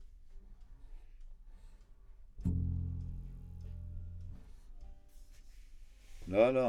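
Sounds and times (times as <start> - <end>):
bass note C: 2.5 - 4.8.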